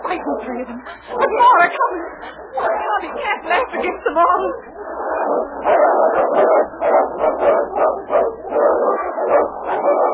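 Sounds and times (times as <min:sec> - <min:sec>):
speech: 0:00.2 - 0:08.0
dog barking: 0:05.2 - 0:10.1.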